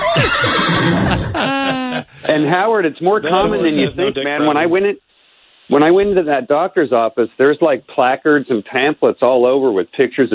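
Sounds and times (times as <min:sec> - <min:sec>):
horse neighing: 0:00.0 - 0:01.4
laughter: 0:00.0 - 0:02.6, 0:03.2 - 0:04.7
speech: 0:01.1 - 0:05.1, 0:05.7 - 0:10.3.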